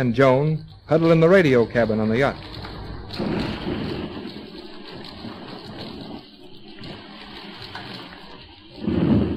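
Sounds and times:
speech: 0:00.0 - 0:03.6
deep thunder rumbling: 0:00.0 - 0:09.3
storm rain: 0:00.0 - 0:09.3
stormy wind roaring: 0:02.1 - 0:09.3.

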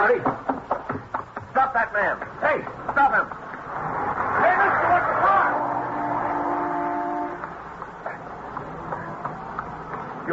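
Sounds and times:
speech: 0:00.0 - 0:00.5, 0:01.8 - 0:05.3
street traffic: 0:00.0 - 0:10.3
car horn blaring: 0:05.2 - 0:07.6.

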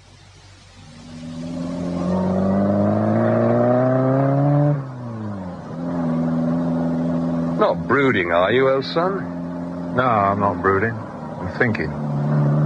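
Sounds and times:
car engine revving as the parked car pulls away: 0:00.0 - 0:12.6
speech: 0:07.7 - 0:09.4, 0:10.0 - 0:12.1.

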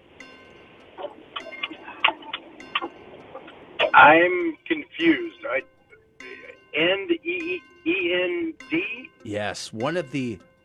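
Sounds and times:
countdown clock ticking: 0:00.2 - 0:10.6
speech: 0:04.0 - 0:05.7, 0:06.8 - 0:10.5.

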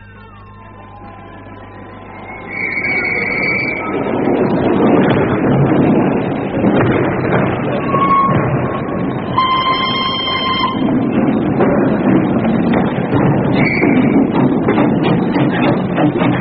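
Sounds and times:
high train whistle tones: 0:00.0 - 0:04.7, 0:09.3 - 0:11.0, 0:13.6 - 0:14.2
train pulling away from a station with chugging rumble: 0:00.0 - 0:16.4.

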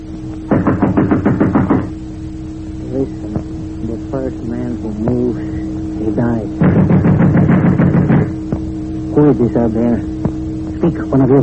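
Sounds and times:
low steady hum: 0:00.0 - 0:11.4
firm knocking on a door: 0:00.5 - 0:01.9, 0:06.6 - 0:08.7
speech: 0:09.4 - 0:10.2, 0:10.8 - 0:11.4.

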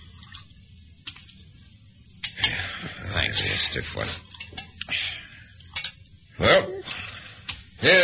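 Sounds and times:
water pouring into a glass as a drink is poured: 0:00.0 - 0:00.6
low steady hum: 0:00.0 - 0:08.0
speech: 0:03.2 - 0:04.3, 0:07.8 - 0:08.0.

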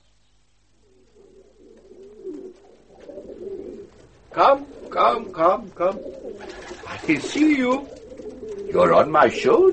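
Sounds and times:
birds cooing: 0:00.0 - 0:09.7
speech: 0:04.4 - 0:08.0, 0:08.7 - 0:09.7.

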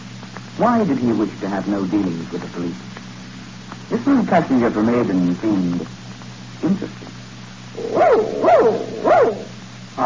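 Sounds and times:
speech: 0:00.6 - 0:03.0, 0:03.9 - 0:06.0, 0:06.6 - 0:07.2, 0:07.8 - 0:10.0
dog barking: 0:07.8 - 0:09.5.

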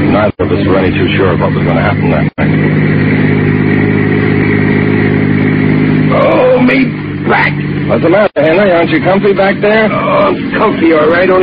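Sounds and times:
car engine droning while driving in the Pacific Palisades: 0:00.0 - 0:11.4
speech: 0:00.2 - 0:03.2, 0:06.1 - 0:11.4.

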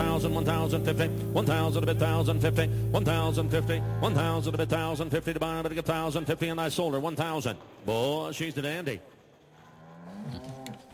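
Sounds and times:
music track: 0:00.0 - 0:06.4
speech: 0:00.2 - 0:09.1
cow mooing: 0:02.7 - 0:05.1, 0:09.6 - 0:10.8.

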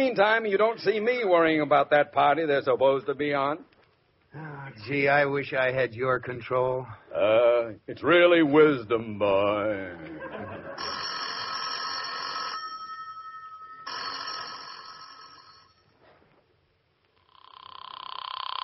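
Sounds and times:
speech: 0:00.0 - 0:03.7, 0:04.3 - 0:11.0
laughter: 0:09.9 - 0:11.0
telephone bell ringing: 0:10.6 - 0:16.0.

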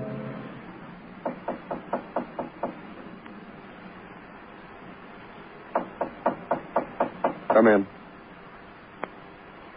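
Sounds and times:
knocking on a door: 0:01.2 - 0:03.1, 0:05.7 - 0:07.8
door rattle: 0:05.8 - 0:07.8.

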